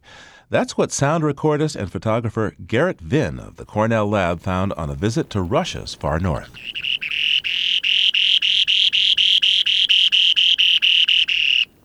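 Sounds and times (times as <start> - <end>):
speech: 0.5 - 7.0
Spoon-billed Sandpiper song on breeding grounds in far northeast Russia: 2.6 - 11.8.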